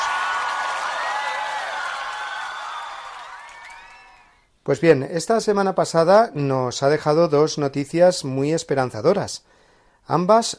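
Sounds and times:
crowd applauding: 0:00.0 - 0:04.4
high whistles: 0:01.2 - 0:04.4
speech: 0:04.7 - 0:10.5.

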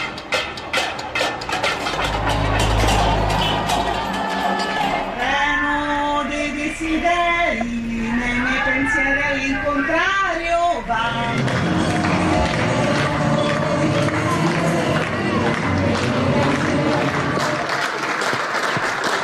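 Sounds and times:
large crowd clapping and cheering from balconies: 0:00.0 - 0:05.8, 0:10.9 - 0:19.2
raised voices calling out: 0:00.2 - 0:17.8.

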